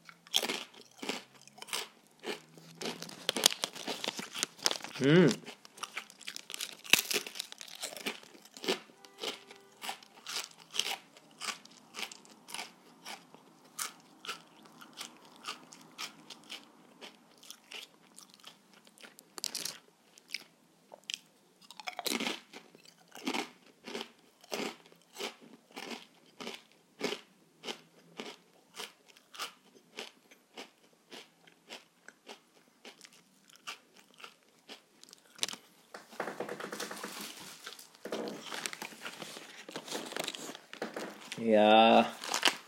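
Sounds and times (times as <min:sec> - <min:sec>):
crunching and chewing sweet shrimp crackers: 0:00.0 - 0:42.6
speech: 0:05.0 - 0:05.4, 0:41.5 - 0:41.8.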